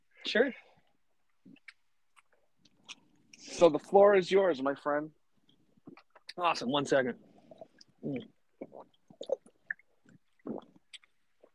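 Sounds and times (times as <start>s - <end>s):
speech: 0.3s - 0.7s, 3.4s - 5.2s, 6.4s - 7.3s, 8.0s - 9.4s
small wet mouth clicks: 1.3s - 3.5s, 7.6s - 11.5s
person drinking with quiet swallowing gulps: 5.5s - 6.4s, 7.3s - 11.5s.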